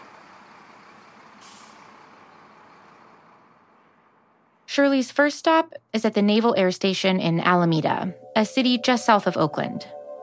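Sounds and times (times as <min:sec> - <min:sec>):
heavy loaded truck engine rumbling driving out through a gate: 0:00.0 - 0:06.2
truck air-brake hiss: 0:01.4 - 0:02.0
speech: 0:04.8 - 0:10.0.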